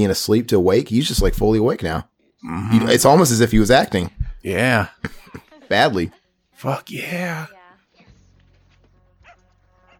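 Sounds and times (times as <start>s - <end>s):
speech: 0.0s - 7.6s
dog barking in short sharp barks: 9.2s - 9.9s.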